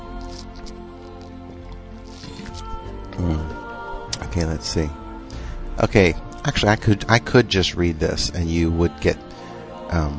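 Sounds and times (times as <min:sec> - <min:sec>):
person drinking water: 0:00.1 - 0:04.2
speech: 0:04.4 - 0:05.0, 0:05.8 - 0:09.2, 0:09.9 - 0:10.1.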